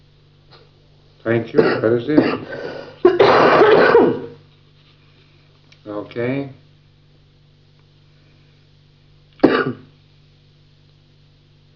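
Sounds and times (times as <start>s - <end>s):
low steady hum: 0.0s - 11.7s
speech: 1.2s - 2.7s, 6.0s - 6.6s
person coughing: 1.6s - 4.4s, 9.4s - 9.9s.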